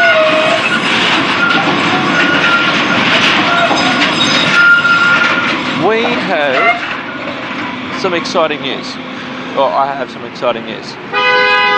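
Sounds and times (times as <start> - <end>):
train wheels squealing on rails: 0.0 - 7.7
train rumbling and rattling past on rails: 0.0 - 11.7
speech: 8.0 - 11.4.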